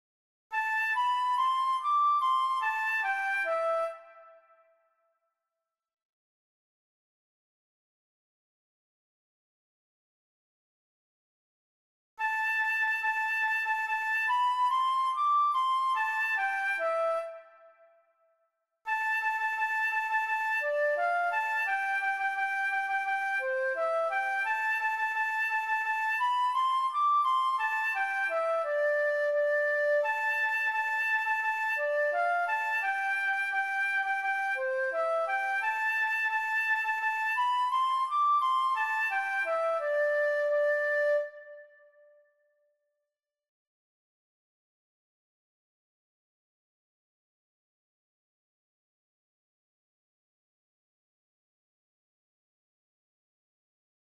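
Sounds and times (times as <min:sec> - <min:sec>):
flute playing a sea shanty tune: 0:00.5 - 0:04.7, 0:12.2 - 0:18.0, 0:18.9 - 0:42.3.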